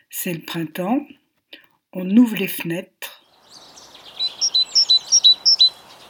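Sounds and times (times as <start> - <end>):
speech: 0.1 - 1.2, 2.0 - 3.1
birds chirping outdoors in spring heard through open windows: 3.2 - 6.0.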